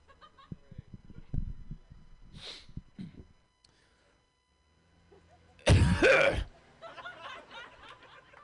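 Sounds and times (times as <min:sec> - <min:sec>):
laughter: 0:00.0 - 0:00.8, 0:06.5 - 0:08.4
sputtering wheezy breaths: 0:02.3 - 0:04.3
man imitating an old British man clearing his throat: 0:05.6 - 0:06.5.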